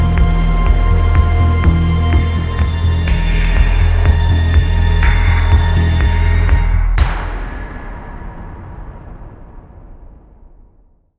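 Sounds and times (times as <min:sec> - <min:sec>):
suspense jingles medley: 0:00.2 - 0:07.8.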